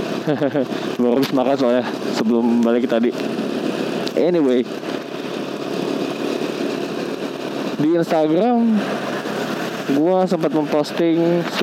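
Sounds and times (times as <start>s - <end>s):
motorcycle engine running: 0.0s - 11.6s
laughter: 0.2s - 0.8s
speech: 0.3s - 3.4s, 4.2s - 5.0s, 7.8s - 9.1s, 9.9s - 11.6s.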